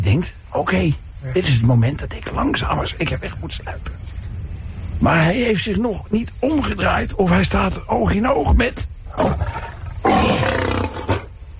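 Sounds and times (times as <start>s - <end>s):
speech: 0.1s - 4.1s, 5.0s - 9.7s
lion roaring: 9.1s - 11.3s.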